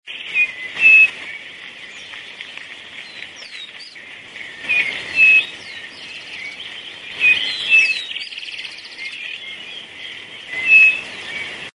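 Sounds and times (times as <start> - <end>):
crespín calling: 0.1 - 11.7.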